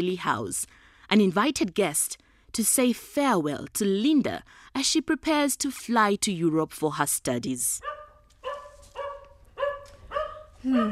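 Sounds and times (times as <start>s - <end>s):
speech: 0.0s - 7.9s, 10.6s - 10.9s
dog barking at a visitor at the front door of a family house: 7.8s - 10.9s.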